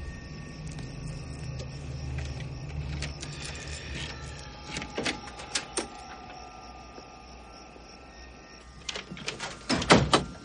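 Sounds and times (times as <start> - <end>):
low steady hum: 0.0 - 10.4
house front door opening: 0.8 - 7.2, 8.6 - 10.4.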